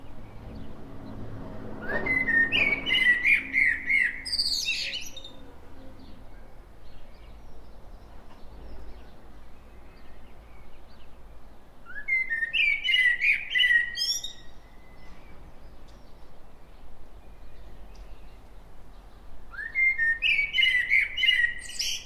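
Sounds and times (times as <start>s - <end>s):
common blackbird Turdus merula song: 0.0s - 22.0s.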